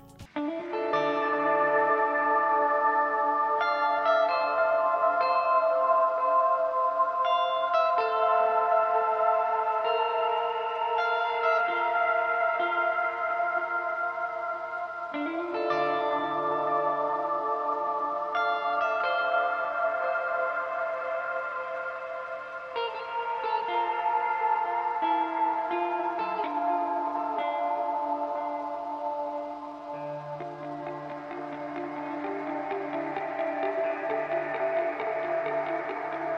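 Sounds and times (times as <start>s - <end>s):
guitar piece drenched in heavy reverb: 0.0s - 36.3s.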